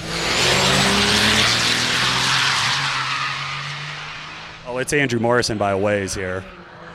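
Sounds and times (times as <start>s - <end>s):
drag racing truck engines roaring launching down the track: 0.0s - 6.9s
harsh tire noise of drag racing trucks: 0.0s - 6.9s
speech: 4.8s - 6.6s.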